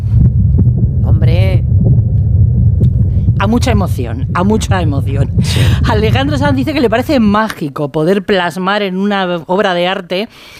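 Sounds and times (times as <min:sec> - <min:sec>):
strong amplified heartbeat: 0:00.0 - 0:07.5
dense low rumble: 0:00.0 - 0:07.6
speech: 0:03.4 - 0:10.5.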